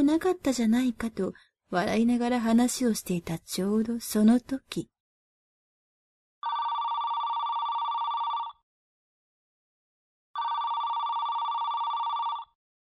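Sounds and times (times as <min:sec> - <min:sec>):
speech: 0:00.0 - 0:04.9
unfamiliar mobile phone ringtone: 0:06.4 - 0:08.6, 0:10.4 - 0:12.6.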